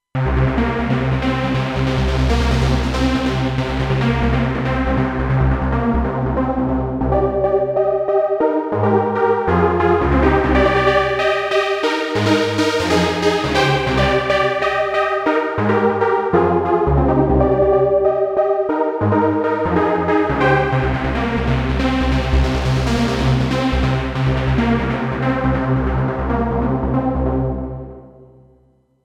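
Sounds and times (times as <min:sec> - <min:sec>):
synthesizer pad: 0:00.2 - 0:28.1.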